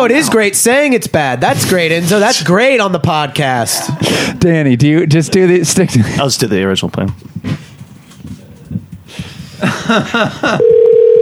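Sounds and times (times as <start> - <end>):
speech: 0.0 - 7.5, 9.6 - 10.8
voices: 0.0 - 9.7
laughter: 3.4 - 4.4, 7.4 - 10.7
shuffling noise: 6.9 - 10.4
steady loud electronic ringback or dial tone: 10.6 - 11.2.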